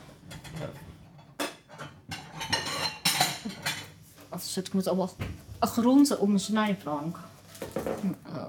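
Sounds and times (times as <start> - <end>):
kitchenware dishes clinking as a bowl is taken out: 0.0 - 4.0, 7.6 - 8.2
speech: 4.4 - 7.3, 8.0 - 8.3.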